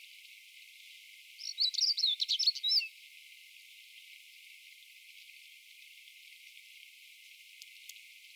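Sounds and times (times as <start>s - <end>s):
Siberian stonechat giving high scratchy chirps and twittering notes in Ladakh: 1.4s - 2.9s.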